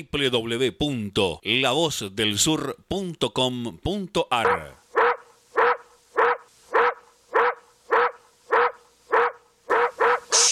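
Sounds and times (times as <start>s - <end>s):
speech: 0.0s - 4.8s
dog barking: 4.9s - 10.5s.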